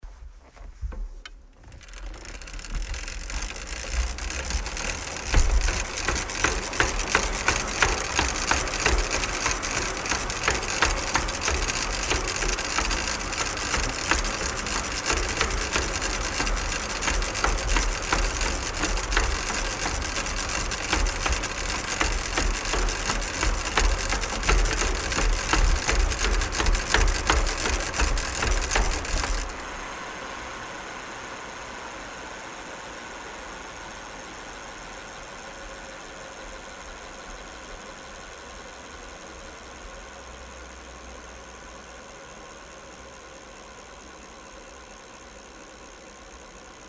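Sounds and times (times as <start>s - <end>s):
bicycle pedaling fast: 1.5s - 30.8s.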